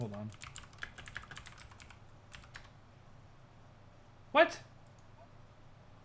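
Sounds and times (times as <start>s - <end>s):
speech: 0.0s - 0.6s, 4.4s - 4.7s
soft typing on a computer keyboard during an online search: 0.0s - 2.7s.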